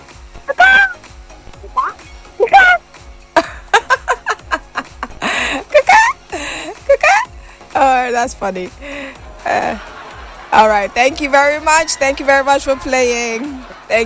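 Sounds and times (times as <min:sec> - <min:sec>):
person vocally imitating chicken clucks and squawks: 0:00.5 - 0:01.0, 0:01.6 - 0:02.8
laughter: 0:03.4 - 0:06.2, 0:09.4 - 0:14.0
speech: 0:08.2 - 0:09.9, 0:10.5 - 0:14.0.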